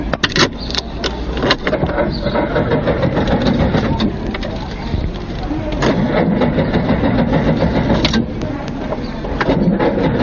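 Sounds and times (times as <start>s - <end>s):
car starter cranking but engine failing to start: 0.0s - 10.2s.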